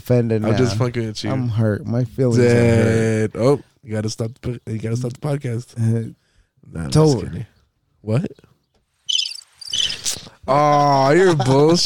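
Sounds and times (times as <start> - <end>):
speech: 0.1 - 8.5, 10.5 - 11.8
crickets chirping: 9.1 - 10.2
laughter: 10.5 - 11.8.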